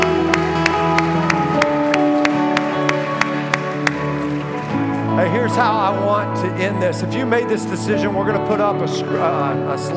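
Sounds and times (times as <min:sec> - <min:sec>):
audience clapping in a steady rhythm: 0:00.0 - 0:07.5
instrumental music: 0:00.0 - 0:09.9
speech: 0:05.5 - 0:09.9.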